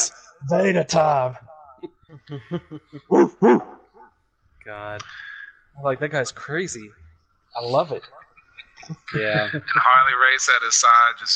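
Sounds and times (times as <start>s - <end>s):
speech: 0.4s - 3.8s, 4.6s - 8.2s, 8.8s - 11.3s
laughter: 2.1s - 3.5s, 9.0s - 10.1s
man imitating a professional wrestler's dog-like bark: 3.1s - 3.8s.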